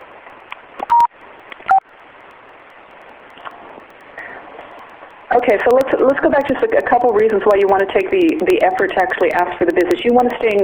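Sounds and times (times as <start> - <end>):
faint hissy phone-line background: 0.0 - 10.6
speech: 5.4 - 10.6
telephone keypad tones from pressing star and five: 6.1 - 10.6.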